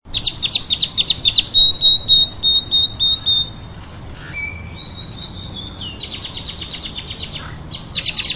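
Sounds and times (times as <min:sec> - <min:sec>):
bird calls with buzzy chirps, whistled notes and chattering: 0:00.1 - 0:03.6, 0:04.2 - 0:08.3.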